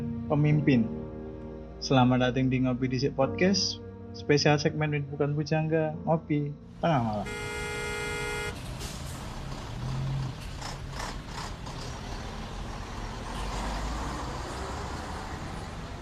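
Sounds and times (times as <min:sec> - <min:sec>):
speech: 0:00.3 - 0:01.0, 0:01.8 - 0:07.6
heavy traffic engine rumble and clattering mechanical noise: 0:06.7 - 0:15.9
car horn blaring: 0:06.9 - 0:08.6.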